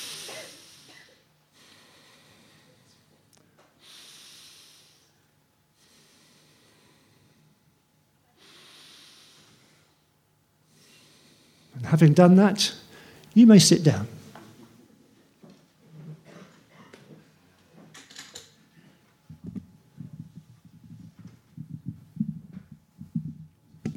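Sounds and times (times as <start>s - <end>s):
several people standing, taking deep breaths and exhaling: 0.0s - 11.8s, 12.9s - 13.3s, 18.6s - 20.4s
speech: 11.9s - 12.8s, 13.4s - 14.2s.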